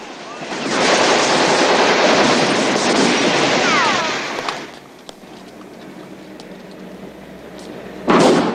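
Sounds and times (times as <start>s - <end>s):
bus crashing: 0.0s - 5.9s, 8.0s - 8.5s
debris clattering: 0.0s - 6.8s.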